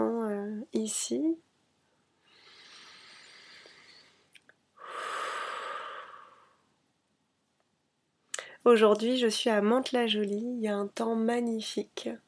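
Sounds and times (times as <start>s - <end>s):
speech: 0.8s - 1.5s, 8.7s - 12.2s
calm breathing during a relaxed yoga settling-in: 2.1s - 6.7s.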